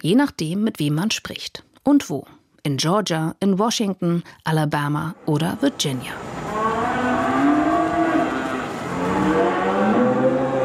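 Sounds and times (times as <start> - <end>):
speech: 0.0 - 6.3
cattle lowing in an open stable on a Virginia farm: 6.4 - 10.6.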